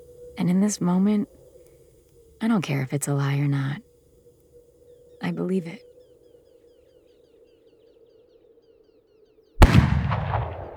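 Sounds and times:
speech: 0.4 - 1.4, 2.4 - 3.9, 5.2 - 5.9
gunshot: 9.6 - 10.7.

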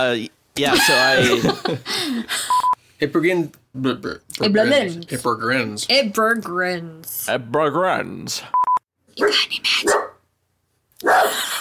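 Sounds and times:
speech: 0.0 - 8.6, 9.2 - 10.0, 11.0 - 11.5
laughter: 0.6 - 2.5, 11.2 - 11.5
person imitating a dog bark: 11.0 - 11.4.

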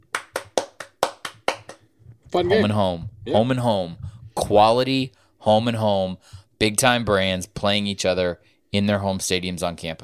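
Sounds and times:
hand claps: 0.0 - 1.9
speech: 2.3 - 10.0.

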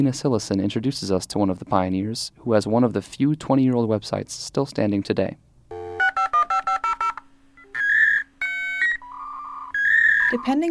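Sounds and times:
speech: 0.0 - 5.5, 10.3 - 10.6
touch-tone dialing beeps of a dial-up modem: 5.7 - 10.5.

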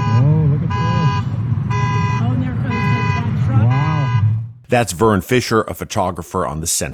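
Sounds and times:
car horns blaring in a flooded parking lot: 0.0 - 5.5
speech: 4.7 - 6.9.

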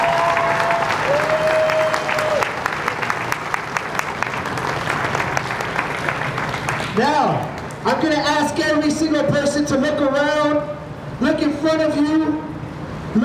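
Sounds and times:
audience applauding: 0.0 - 7.8
speech: 7.8 - 12.5.

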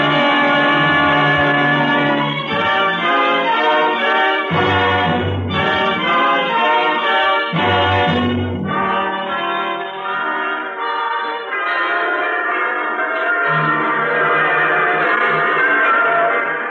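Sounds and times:
many church bells pealing together: 0.0 - 16.6.

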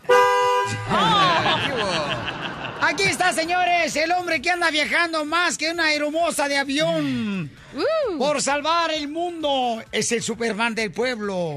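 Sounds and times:
car horn blast: 0.0 - 0.9
laughter: 0.7 - 4.7
speech: 0.7 - 11.5.

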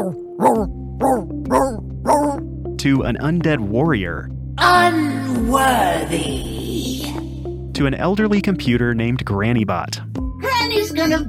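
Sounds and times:
voice actor imitating a singing dog: 0.0 - 2.4
speech: 0.1 - 1.8, 2.8 - 6.6, 7.8 - 10.1, 10.8 - 11.2.

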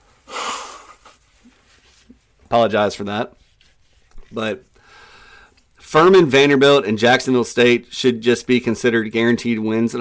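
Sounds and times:
person with a slight cold blowing nose: 0.2 - 2.1
faint sniffles: 0.2 - 2.2
speech: 2.5 - 3.4, 4.3 - 4.7, 5.9 - 10.0.

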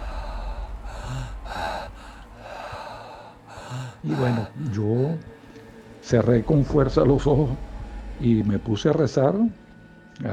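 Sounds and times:
heavy labored breathing with rasping gasps: 0.0 - 6.9
speech: 4.0 - 5.3, 6.0 - 9.6, 10.2 - 10.3.

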